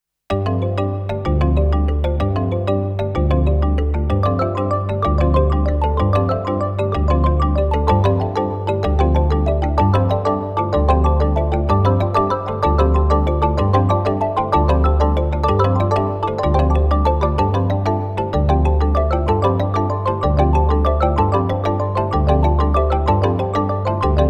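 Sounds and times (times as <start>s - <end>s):
kalimba ringtone: 0.3s - 24.2s.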